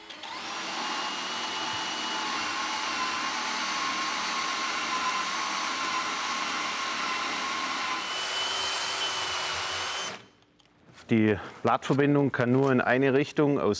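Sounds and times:
power drill drilling slanted holes into wood for wooden pegs: 0:00.0 - 0:10.4
speech: 0:11.1 - 0:13.7.

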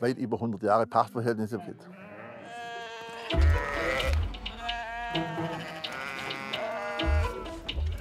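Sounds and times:
speech: 0:00.0 - 0:02.1
flock of sheep bleating: 0:01.6 - 0:07.7.

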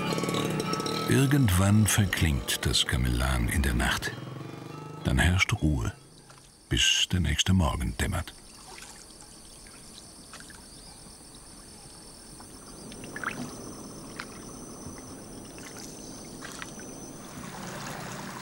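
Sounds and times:
faint high insect drone: 0:00.0 - 0:18.4
speech: 0:01.1 - 0:04.2, 0:05.0 - 0:06.0, 0:06.7 - 0:08.4
gentle water splashes as fishermen set nets from a small boat on a river: 0:08.3 - 0:10.8, 0:11.4 - 0:18.4.

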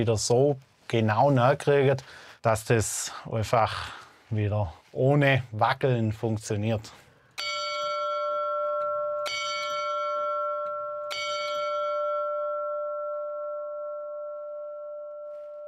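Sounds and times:
speech: 0:00.0 - 0:07.0
church bell ringing in a wooden bell frame in the church tower: 0:07.4 - 0:15.6.

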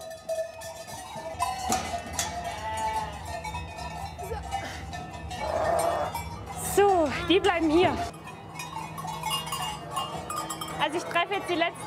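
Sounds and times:
sheep bells clanking and jingling: 0:00.0 - 0:11.8
sheep flock rustling and shuffling: 0:00.0 - 0:11.8
sheep bleating: 0:01.8 - 0:03.5
speech: 0:07.3 - 0:08.2, 0:10.9 - 0:11.8.

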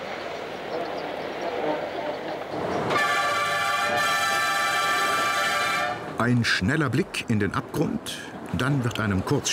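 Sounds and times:
mountain train climbing a 240 per mille gradient by the Mont Blanc massif: 0:00.0 - 0:06.5
speech: 0:06.2 - 0:09.5.

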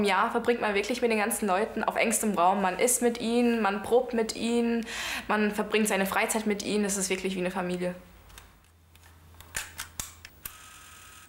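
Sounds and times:
speech: 0:00.0 - 0:08.1
camera shutter clicks: 0:09.4 - 0:11.2.

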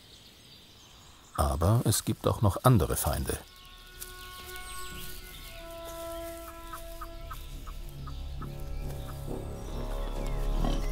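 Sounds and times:
speech: 0:01.4 - 0:03.5
hen clucking: 0:05.7 - 0:10.9.

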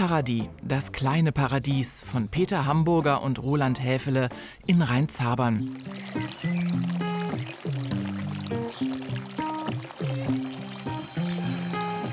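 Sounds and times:
speech: 0:00.0 - 0:06.9
water trickling and splashing in an outdoor garden in Rheinzabern: 0:05.5 - 0:12.1.

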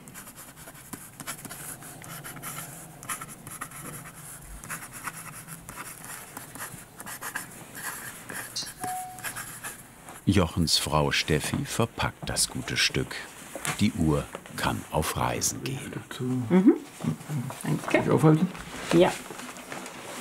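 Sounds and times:
pen scratching across a watch warranty card while writing by hand: 0:00.0 - 0:09.8
speech: 0:10.3 - 0:19.3.

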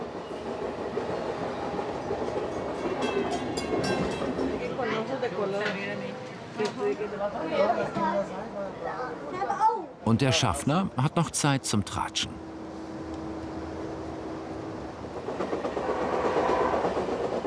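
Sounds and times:
regional passenger train rolling along the rails: 0:00.0 - 0:05.2, 0:12.4 - 0:17.4
people chatting indistinctly inside the train carriage: 0:04.6 - 0:12.4
speech: 0:06.9 - 0:12.5.

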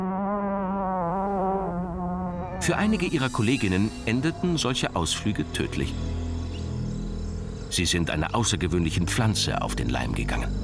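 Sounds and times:
fly buzzing: 0:00.0 - 0:07.8
speech: 0:02.6 - 0:06.2, 0:07.7 - 0:10.6.

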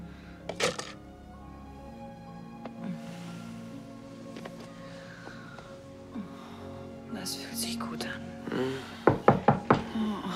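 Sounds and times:
speech: 0:07.2 - 0:08.9
firm knocking on a door: 0:09.1 - 0:09.9.

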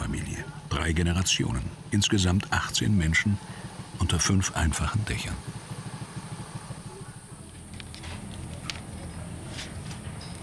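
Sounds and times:
small moped engine puttering unevenly in a family yard: 0:00.0 - 0:10.4
speech: 0:00.8 - 0:05.6
faint clinks outdoors: 0:07.5 - 0:10.4.

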